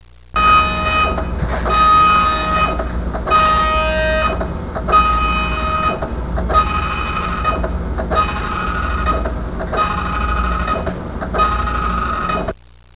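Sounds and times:
printer: 0.4s - 12.6s.

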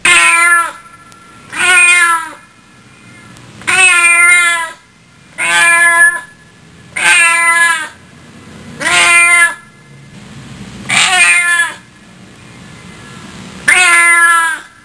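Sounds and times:
cat meowing: 0.0s - 0.9s, 1.5s - 2.5s, 3.6s - 4.8s, 5.4s - 6.3s, 7.0s - 8.0s, 8.8s - 9.7s, 10.9s - 11.9s, 13.6s - 14.8s.

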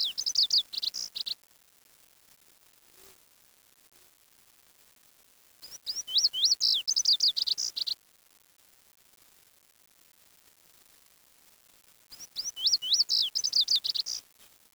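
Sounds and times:
bird calls of rapid high chirping notes: 0.0s - 1.3s, 5.7s - 8.0s, 12.2s - 14.2s.

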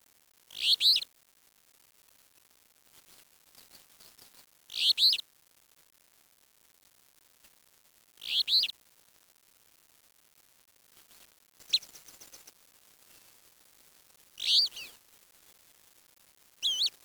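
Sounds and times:
faint background hiss: 0.0s - 17.0s
bird chirping calls: 0.6s - 1.0s, 4.8s - 5.2s, 8.2s - 8.7s, 14.4s - 15.0s, 16.6s - 17.0s.

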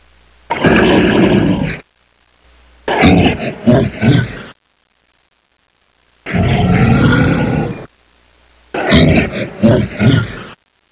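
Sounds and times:
bear growling: 0.5s - 1.8s, 2.9s - 4.6s, 6.3s - 7.9s, 8.8s - 10.6s.

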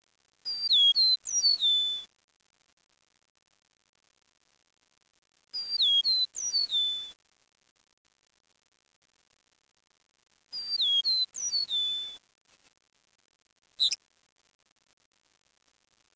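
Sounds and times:
bird call of clear downward-sliding whistles: 0.5s - 2.0s, 5.6s - 7.1s, 10.6s - 12.2s.

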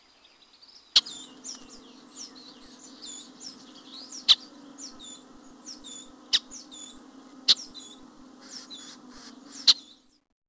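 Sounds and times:
hooded oriole chattering song: 1.0s - 10.1s
low steady hum: 1.0s - 10.2s.

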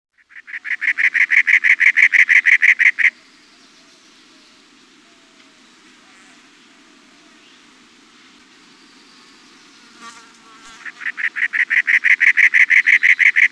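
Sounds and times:
cactus wren song of rasping chugging notes: 0.2s - 3.7s, 10.8s - 13.5s.

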